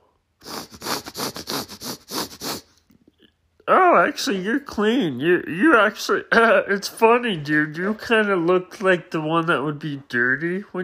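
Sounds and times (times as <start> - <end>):
breathy sniffs: 0.4 - 3.0
speech: 3.7 - 10.8.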